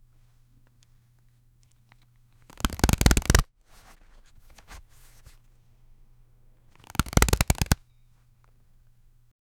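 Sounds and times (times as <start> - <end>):
cards shuffling: 1.7 - 5.5, 6.7 - 8.5.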